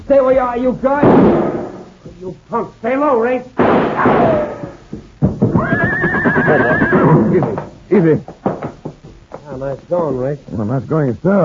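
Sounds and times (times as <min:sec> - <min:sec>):
noisy rustle: 0:00.0 - 0:11.4
speech: 0:00.1 - 0:01.6, 0:02.2 - 0:08.4, 0:09.6 - 0:11.4
brief thump: 0:01.0 - 0:02.2, 0:03.6 - 0:05.7
horse whinnying: 0:05.5 - 0:07.7.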